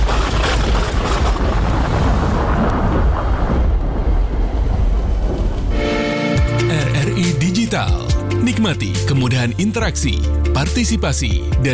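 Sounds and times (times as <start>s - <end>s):
rolling rumble of thunder: 0.0s - 6.6s
speech: 7.8s - 11.7s.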